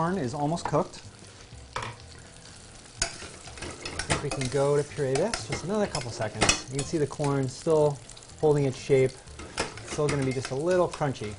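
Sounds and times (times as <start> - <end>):
speech: 0.0 - 1.2, 4.2 - 9.3, 10.0 - 11.3
fish skin frying skin-side down in oil in a pan: 0.0 - 11.3.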